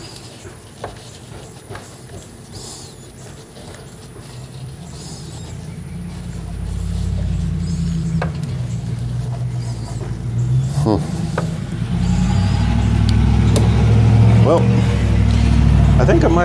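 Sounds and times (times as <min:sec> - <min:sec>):
voices: 0:00.0 - 0:16.4
noisy truck rumbling past: 0:04.2 - 0:16.4.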